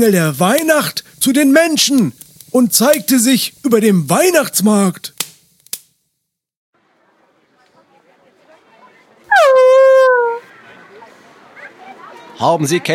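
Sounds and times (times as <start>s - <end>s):
speech: 0.0s - 5.2s, 12.4s - 12.9s
dog yelping and whining after nearly being stepped on: 9.3s - 10.4s.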